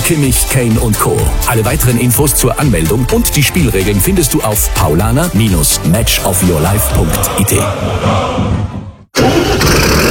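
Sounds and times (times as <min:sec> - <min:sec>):
speech: 0:00.1 - 0:10.0
Fendt Vario tractor engine starting: 0:09.1 - 0:10.0.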